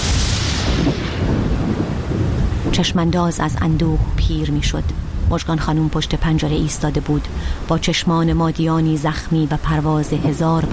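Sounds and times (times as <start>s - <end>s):
deep low rumble: 0.0s - 5.4s
steady rain pouring: 0.0s - 10.7s
speech: 2.8s - 10.7s.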